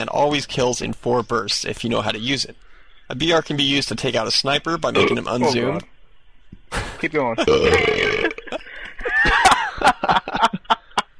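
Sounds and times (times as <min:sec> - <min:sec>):
speech: 0:00.0 - 0:05.9, 0:06.7 - 0:08.4
long loud gurgling burp: 0:05.0 - 0:05.6, 0:07.4 - 0:08.4
laughter: 0:07.4 - 0:11.1.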